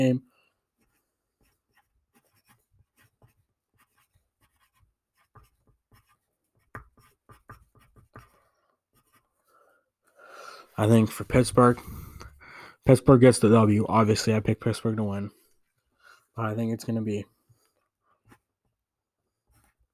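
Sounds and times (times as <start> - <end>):
speech: 0.0 - 0.3, 10.8 - 12.0, 12.8 - 15.4, 16.4 - 17.3
pen scratching across a ripped scrap of paper: 0.7 - 9.4, 19.4 - 19.9.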